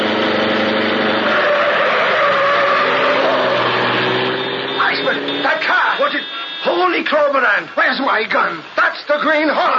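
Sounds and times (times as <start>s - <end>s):
car speeding past with engine roaring: 0.0s - 5.8s
speech: 7.0s - 9.7s.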